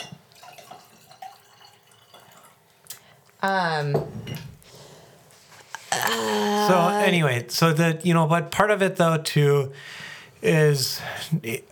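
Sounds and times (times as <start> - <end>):
wine pouring into a glass: 0.0 - 2.6
speech: 3.4 - 4.5, 6.1 - 11.7.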